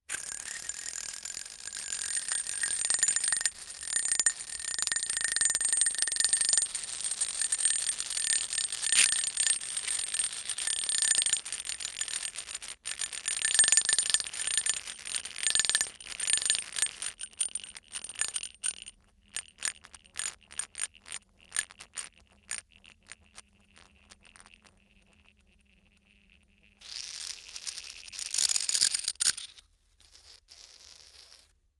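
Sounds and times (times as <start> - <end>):
coins bouncing on a block of dry ice: 0.1 - 24.7, 26.8 - 29.5.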